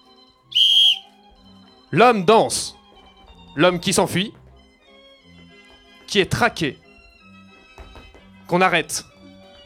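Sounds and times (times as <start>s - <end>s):
sharp piercing whistle blast: 0.5s - 1.1s
speech: 1.9s - 2.8s, 3.6s - 4.4s, 6.1s - 6.8s, 8.5s - 9.1s.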